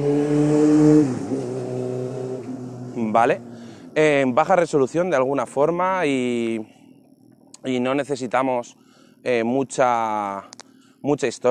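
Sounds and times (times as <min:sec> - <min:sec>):
motorcycle engine droning as it passes by: 0:00.0 - 0:03.9
speech: 0:03.2 - 0:06.8, 0:07.6 - 0:11.5.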